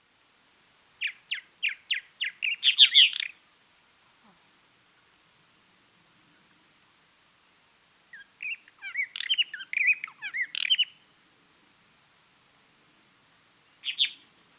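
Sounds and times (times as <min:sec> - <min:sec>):
purple martin Progne subis hesperia: 0:01.0 - 0:03.4, 0:08.1 - 0:11.0, 0:13.8 - 0:14.2.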